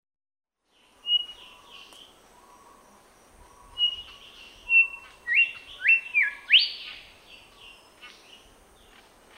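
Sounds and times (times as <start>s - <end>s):
grey whistler calling in Papua New Guinea: 1.0s - 2.8s, 3.5s - 7.1s.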